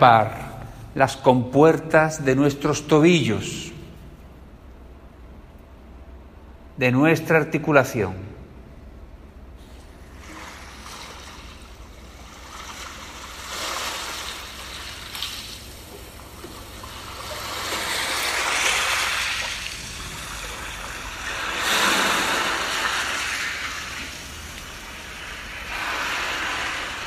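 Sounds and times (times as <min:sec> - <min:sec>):
speech: 0:00.0 - 0:00.4, 0:01.0 - 0:03.8, 0:06.8 - 0:08.3
sea waves: 0:09.6 - 0:27.0.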